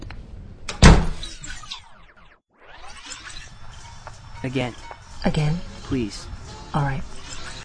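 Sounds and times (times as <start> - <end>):
door closing: 0.7 - 1.8
speech: 4.4 - 7.2.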